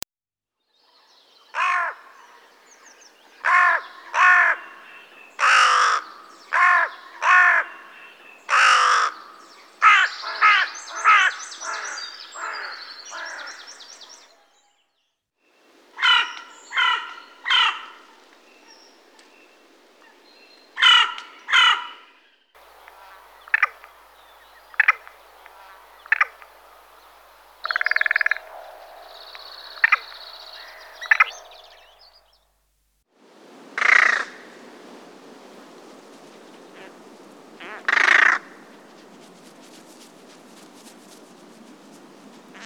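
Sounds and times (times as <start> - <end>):
carrion crow calling: 1.6 - 2.2, 3.4 - 14.1, 16.0 - 18.1, 20.8 - 22.0, 22.6 - 32.2, 36.7 - 38.8.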